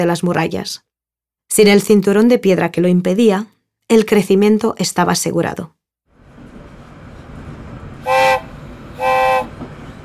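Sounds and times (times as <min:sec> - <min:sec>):
speech: 0:00.0 - 0:00.9, 0:01.5 - 0:05.8
train horn blasts: 0:08.0 - 0:09.7.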